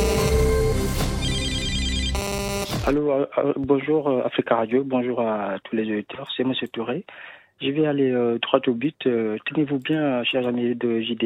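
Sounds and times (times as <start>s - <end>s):
electronic answering-machine tones on a radio station's phone line: 0.0s - 3.0s
speech: 2.8s - 11.2s.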